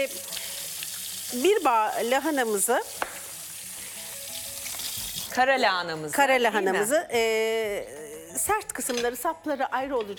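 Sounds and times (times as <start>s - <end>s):
speech: 0.0s - 0.3s, 1.3s - 3.0s, 5.3s - 10.1s
running tap water pouring into a kitchen sink: 0.0s - 5.4s.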